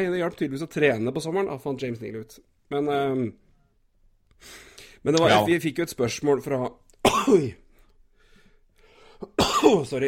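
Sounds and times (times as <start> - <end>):
speech: 0.0 - 3.4, 4.4 - 7.6, 9.2 - 10.0
loud cough: 7.0 - 7.6, 9.3 - 9.9.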